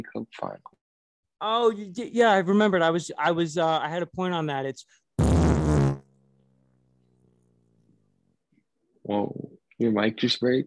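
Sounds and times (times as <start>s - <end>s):
speech: 0.0s - 0.8s, 1.4s - 5.5s, 9.1s - 10.6s
loud wet buzzy sputtering fart: 5.2s - 6.2s.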